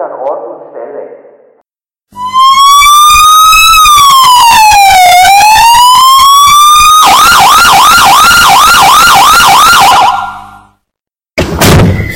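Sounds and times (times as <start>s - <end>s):
speech: 0.0s - 1.2s
loud police car siren wailing and yelping: 2.2s - 10.6s.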